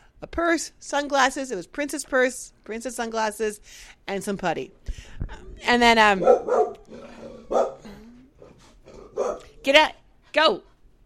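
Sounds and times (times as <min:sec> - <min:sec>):
speech: 0:00.2 - 0:07.8, 0:09.2 - 0:10.7
small dog barking: 0:06.2 - 0:07.9, 0:08.9 - 0:09.6.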